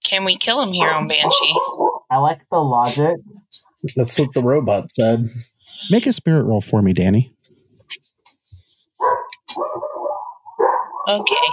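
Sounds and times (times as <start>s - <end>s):
speech: 0.1s - 8.0s, 11.1s - 11.5s
dogs barking: 0.7s - 2.1s, 9.0s - 11.5s.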